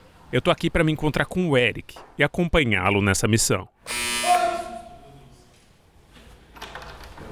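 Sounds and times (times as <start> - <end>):
speech: 0.3 - 3.7
harsh metallic doorbell at an apartment door in Carapicuíba buzzing: 3.9 - 4.5.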